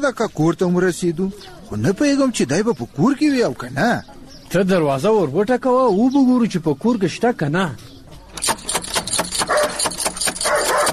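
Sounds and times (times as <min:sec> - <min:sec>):
speech: 0:00.0 - 0:08.5
dog barking and attacking at a house door: 0:09.4 - 0:10.9.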